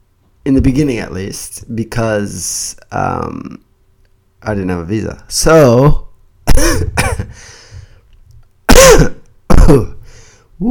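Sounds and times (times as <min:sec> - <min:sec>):
speech: 0:00.4 - 0:03.7, 0:04.4 - 0:06.0
dry throat being cleared: 0:06.5 - 0:07.4, 0:08.7 - 0:10.1.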